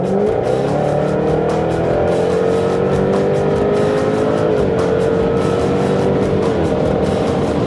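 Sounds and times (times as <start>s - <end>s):
495-horsepower V8 race car accelerating down a straight, heard from inside: 0.0s - 7.6s.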